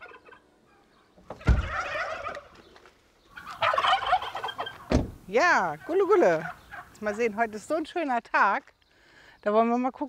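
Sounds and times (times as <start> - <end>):
several turkeys gobbling in greeting: 0.0 - 7.5
speech: 5.3 - 8.8, 9.4 - 10.0.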